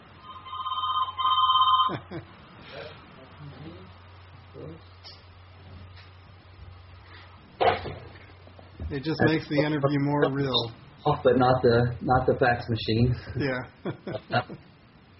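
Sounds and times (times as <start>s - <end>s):
telephone ringing in a sharp electronic burst: 0.2s - 2.1s
speech: 1.9s - 3.0s, 8.9s - 14.7s.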